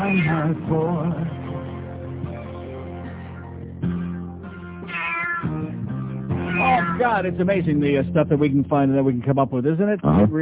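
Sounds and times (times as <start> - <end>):
cat meowing: 0.0 - 0.5, 4.6 - 5.7, 6.3 - 7.2
speech: 0.3 - 1.5, 7.0 - 10.4.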